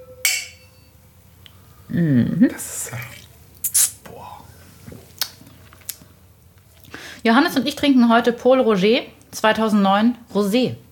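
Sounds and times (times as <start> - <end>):
wine glasses clinking in a toast: 0.0 - 1.0
speech: 1.9 - 3.2, 7.2 - 10.8.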